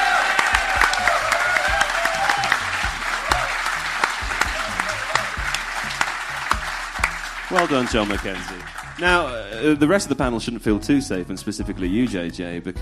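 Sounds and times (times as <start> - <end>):
studio audience applause: 0.0 - 9.8
speech: 7.5 - 12.8.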